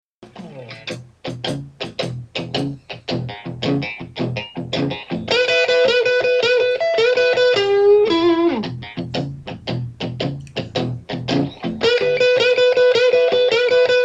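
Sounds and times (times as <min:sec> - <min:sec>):
fake slide guitar lick: 0:00.2 - 0:14.0.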